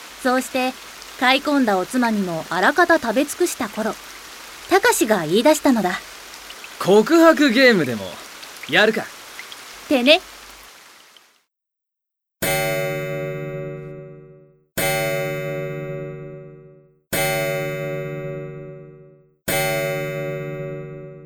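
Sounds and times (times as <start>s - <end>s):
speech: 0.2s - 4.1s, 4.7s - 6.1s, 6.8s - 9.2s, 9.9s - 10.3s
clock chiming midnight in an inn room: 12.4s - 21.2s.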